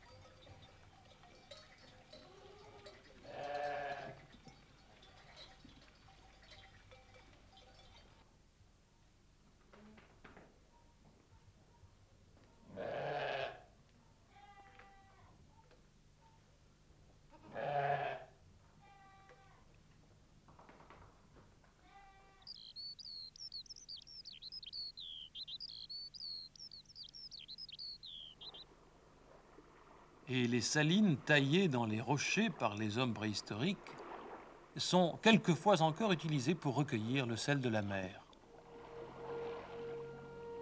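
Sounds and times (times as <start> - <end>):
bell clinking: 0.0 - 8.2
goats bleating: 2.2 - 4.3, 12.7 - 13.6, 17.3 - 18.3
speech: 30.3 - 34.0, 34.8 - 38.2.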